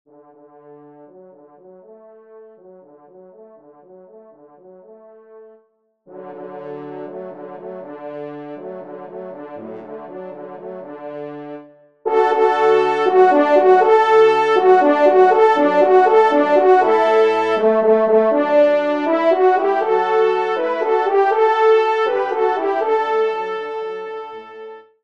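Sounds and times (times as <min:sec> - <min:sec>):
horn solo: 0:06.1 - 0:25.0.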